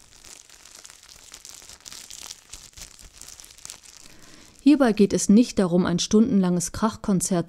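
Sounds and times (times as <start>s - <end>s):
cellophane bag crumpling: 0.0s - 5.2s
speech: 4.6s - 7.4s.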